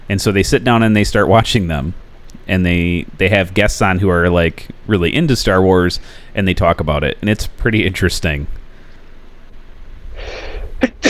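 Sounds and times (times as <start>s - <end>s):
speech: 0.1s - 8.6s
breathy inhale: 6.0s - 6.4s, 10.1s - 10.8s
person sneezing: 10.2s - 11.0s.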